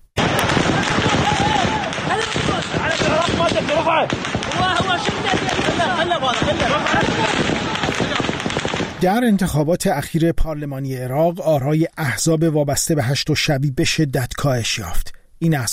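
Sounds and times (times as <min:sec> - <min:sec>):
chaotic crowd of many people shouting and yelling: 0:00.2 - 0:08.5
gunshots fired into the air: 0:00.2 - 0:09.0
speech: 0:09.0 - 0:15.7.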